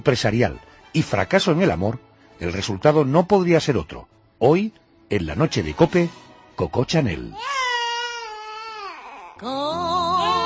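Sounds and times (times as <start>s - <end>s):
speech: 0.0s - 7.6s, 9.4s - 9.9s
baby wailing loudly: 7.3s - 10.4s.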